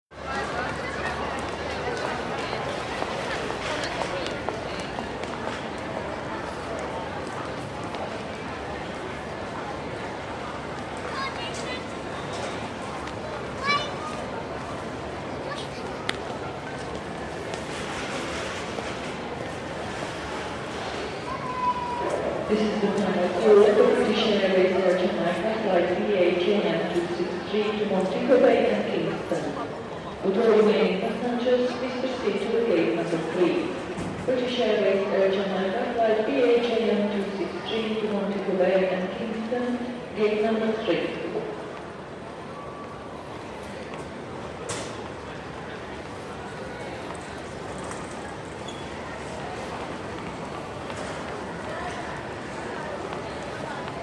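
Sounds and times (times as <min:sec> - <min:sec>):
airport lobby crowd murmur: 0:00.1 - 0:54.0.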